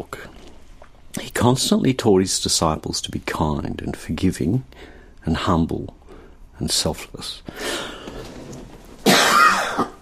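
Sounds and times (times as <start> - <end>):
speech: 1.4 - 6.0, 6.6 - 7.9
harsh cough: 9.0 - 10.0.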